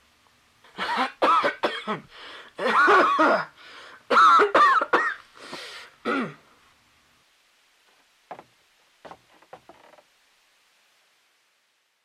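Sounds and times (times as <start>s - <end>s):
harsh coughing fit: 0.8s - 2.0s, 2.6s - 3.5s, 4.1s - 5.2s, 6.0s - 6.4s
throat clearing: 6.1s - 6.4s.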